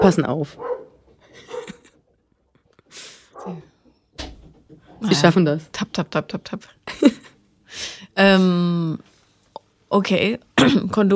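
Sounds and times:
speech: 0:00.0 - 0:00.7, 0:03.4 - 0:03.7, 0:05.0 - 0:09.1, 0:09.9 - 0:11.1
dog barking: 0:00.0 - 0:01.8, 0:03.4 - 0:03.7
laughter: 0:01.2 - 0:02.0.

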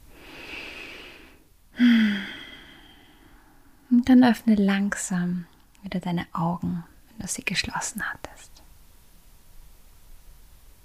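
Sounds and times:
person taking a deep breath in and out during a relaxation exercise: 0:00.0 - 0:03.8
speech: 0:04.1 - 0:08.5.

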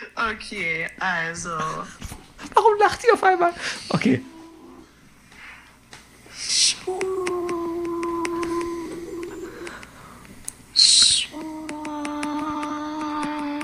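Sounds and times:
speech: 0:00.2 - 0:04.4, 0:06.4 - 0:07.6
sustained hooting tonal vocal sounds: 0:03.7 - 0:05.0, 0:06.3 - 0:13.6
voice imitating ocean waves: 0:04.2 - 0:04.9, 0:06.4 - 0:10.0, 0:10.8 - 0:13.6.

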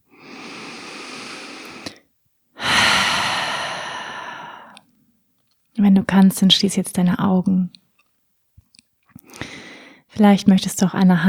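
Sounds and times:
deep breaths released through an open mouth during a guided relaxation: 0:00.1 - 0:02.0, 0:02.6 - 0:04.8, 0:09.3 - 0:10.0
speech: 0:05.9 - 0:07.8, 0:10.2 - 0:11.2.

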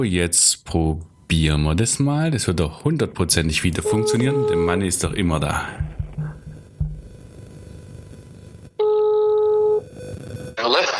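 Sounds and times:
speech: 0:00.0 - 0:06.0
low noise: 0:00.0 - 0:10.9
telephone dialing tone: 0:08.8 - 0:09.8.

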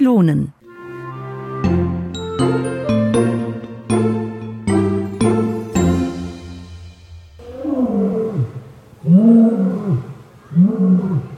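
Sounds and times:
speech: 0:00.0 - 0:00.6
bright chiming musical tones: 0:01.4 - 0:07.8
lion roaring: 0:07.4 - 0:10.1.

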